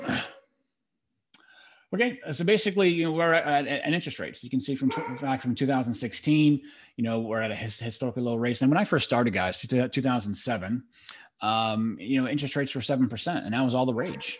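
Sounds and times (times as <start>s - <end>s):
speech: 1.9s - 14.3s
dog giving a short sharp bark: 4.8s - 5.3s, 13.9s - 14.3s.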